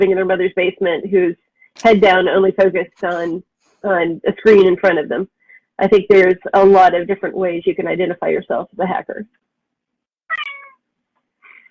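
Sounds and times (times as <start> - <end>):
speech: 0.0 - 9.5
cat meowing: 10.3 - 10.8.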